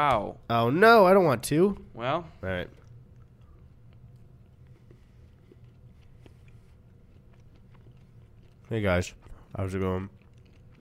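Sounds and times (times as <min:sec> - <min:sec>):
speech: 0:00.0 - 0:02.8, 0:08.7 - 0:10.2
low hum: 0:00.0 - 0:10.8
soft chewing of a piece of chocolate: 0:02.3 - 0:10.8.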